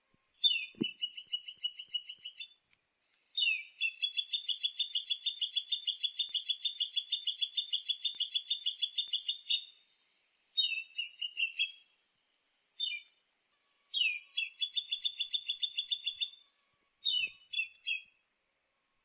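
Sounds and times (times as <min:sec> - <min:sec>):
songbird singing high sharp phrases and chattering trills: 0:00.3 - 0:02.7, 0:03.3 - 0:09.8, 0:10.6 - 0:12.0, 0:12.8 - 0:13.3, 0:13.9 - 0:18.3.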